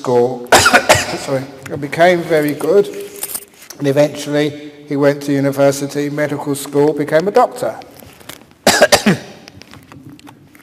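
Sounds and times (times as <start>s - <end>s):
speech: 0.0s - 3.1s, 3.8s - 7.9s, 9.0s - 9.3s
harsh throaty coughing: 0.5s - 1.4s, 8.6s - 9.5s.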